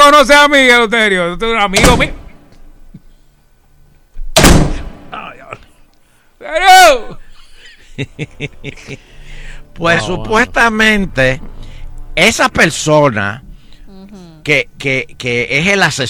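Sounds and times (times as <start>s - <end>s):
speech: 0.1s - 2.2s, 6.4s - 7.2s, 8.0s - 9.1s, 9.8s - 11.6s, 12.2s - 13.4s, 14.4s - 16.0s
door yanked shut with a loud bang: 1.8s - 2.5s, 4.3s - 5.1s
laughter: 7.1s - 9.2s
brief choppy voice sounds: 13.9s - 14.5s
strained vocal cry: 13.9s - 14.5s.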